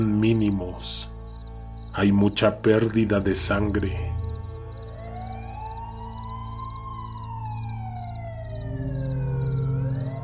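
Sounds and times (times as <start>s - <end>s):
speech: 0.0s - 1.1s, 2.0s - 4.2s
steady low rumble of traffic or engine noise: 0.0s - 10.2s
ambulance siren wailing at a road accident scene: 3.9s - 10.2s.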